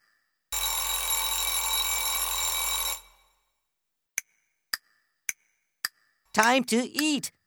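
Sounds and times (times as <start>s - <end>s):
alarm clock bell ringing: 0.6s - 3.3s
speech: 6.4s - 7.4s.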